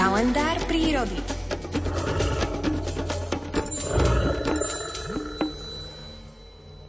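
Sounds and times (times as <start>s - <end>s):
speech: 0.2s - 1.4s
brown bear growling: 1.7s - 5.6s.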